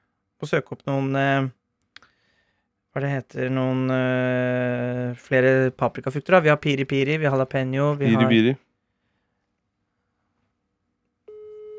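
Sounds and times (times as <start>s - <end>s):
speech: 0.4s - 1.6s, 2.9s - 8.6s
telephone ringback tone of an outgoing phone call: 11.3s - 11.7s.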